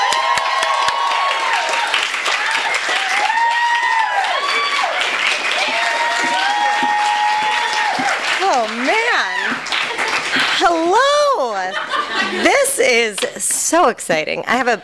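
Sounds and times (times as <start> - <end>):
cheers: 0.0 - 10.1
loud sustained applause from a large audience: 0.0 - 10.7
laughter: 9.8 - 13.0
speech: 12.9 - 14.8.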